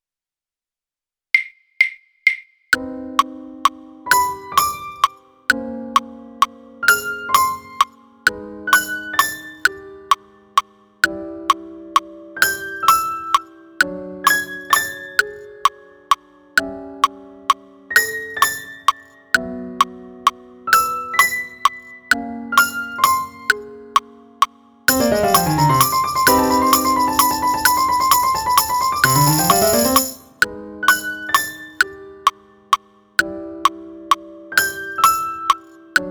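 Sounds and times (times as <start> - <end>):
piano: 2.8 - 36.0
tambourine: 24.9 - 30.4.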